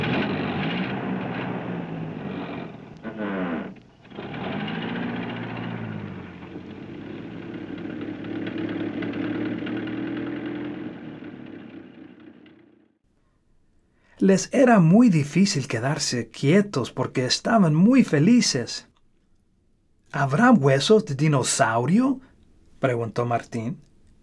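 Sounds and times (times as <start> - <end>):
school bus engine rumbling as the bus drives away from a school: 0.0 - 12.7
speech: 14.2 - 18.9, 20.1 - 23.9.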